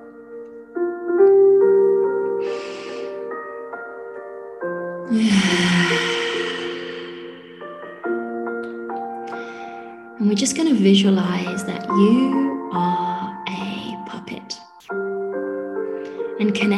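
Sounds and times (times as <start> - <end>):
gentle sustained music: 0.0 - 16.7
long exhale through the mouth during a breathing meditation: 2.4 - 3.2, 5.1 - 8.2
short breath: 2.4 - 3.2, 5.1 - 8.1, 9.3 - 10.1
speech: 10.4 - 13.2.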